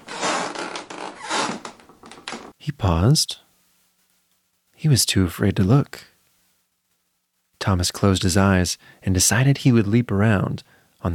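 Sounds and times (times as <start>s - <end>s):
wooden floor creaking on a summer night: 0.0s - 2.6s
speech: 2.6s - 3.4s, 4.8s - 6.1s, 7.6s - 11.1s.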